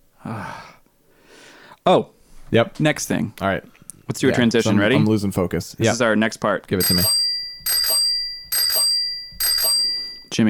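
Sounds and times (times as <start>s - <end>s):
speech: 1.8s - 7.2s
bicycle bell ringing: 6.8s - 10.4s.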